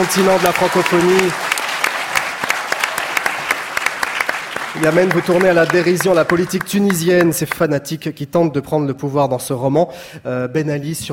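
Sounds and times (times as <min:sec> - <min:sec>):
speech: 0:00.0 - 0:01.4, 0:04.8 - 0:11.1
audience applause for an author on a literary talk program: 0:00.0 - 0:07.4.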